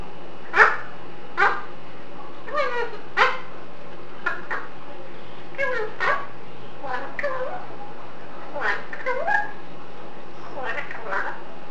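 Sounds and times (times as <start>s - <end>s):
parrot: 0.4s - 1.7s, 2.4s - 3.5s, 4.2s - 4.8s, 5.5s - 7.7s, 8.5s - 9.6s, 10.4s - 11.4s.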